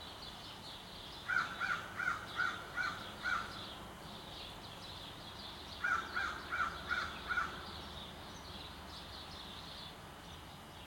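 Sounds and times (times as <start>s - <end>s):
crow cawing in a suburban city setting in Montreal Canada: 1.3s - 3.5s, 5.8s - 7.5s.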